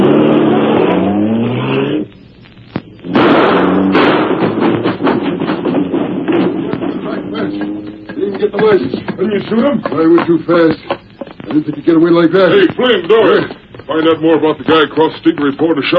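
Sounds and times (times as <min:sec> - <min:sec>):
car engine revving and roaring: 0:00.0 - 0:02.2, 0:03.0 - 0:08.5
car crashing through a fence with splintering and thuds: 0:03.1 - 0:07.5
speech: 0:09.5 - 0:10.9, 0:11.6 - 0:15.9.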